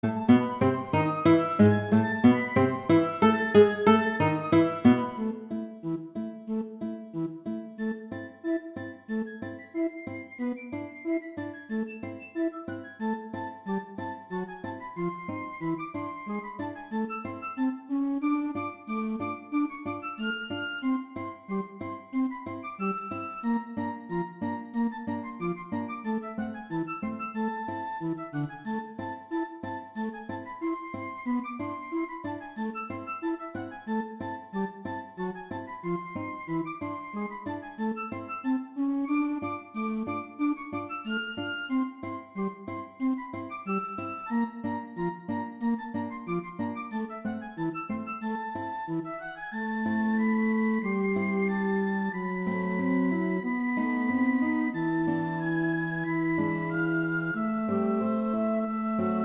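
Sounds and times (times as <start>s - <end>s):
flute: 0.0s - 5.9s, 7.6s - 59.2s
guitar: 0.0s - 59.2s.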